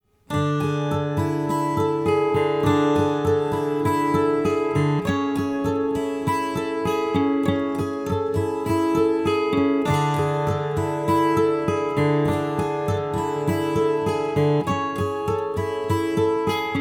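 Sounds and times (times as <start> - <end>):
12-string guitar with reverb: 0.2 - 16.7.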